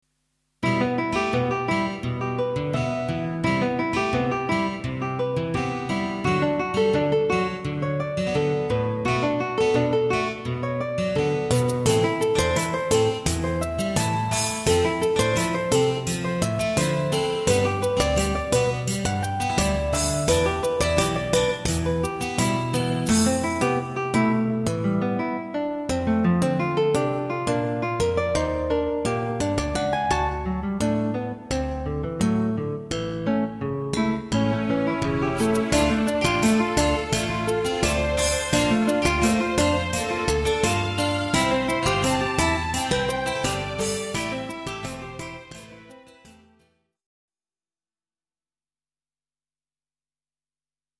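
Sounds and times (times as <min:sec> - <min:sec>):
resigned fusion music: 0:00.6 - 0:46.4.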